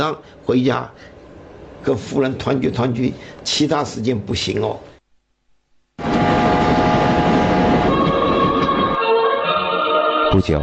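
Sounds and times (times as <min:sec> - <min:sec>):
speech: 0:00.0 - 0:01.1, 0:01.8 - 0:04.9, 0:10.4 - 0:10.6
faint humming tones: 0:00.0 - 0:09.2
passenger train running from Hangzhou to Beijing rumbling: 0:06.0 - 0:09.0.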